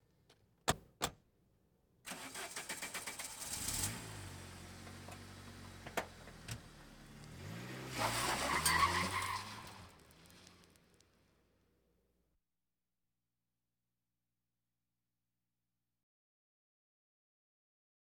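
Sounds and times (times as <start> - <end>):
various automobiles: 2.1 - 11.7.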